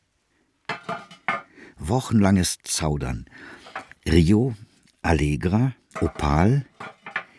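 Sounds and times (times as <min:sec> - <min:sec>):
ceramic roof tiles clinking together: 0:00.7 - 0:01.5, 0:03.5 - 0:04.3, 0:05.9 - 0:07.3
speech: 0:01.9 - 0:06.9.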